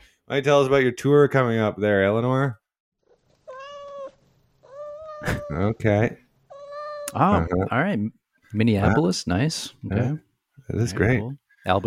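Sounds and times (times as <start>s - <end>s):
speech: 0.3s - 2.6s, 5.2s - 6.2s, 7.1s - 11.8s
cat meowing in a studio: 3.4s - 5.6s, 6.5s - 7.2s
laughter: 5.2s - 5.8s.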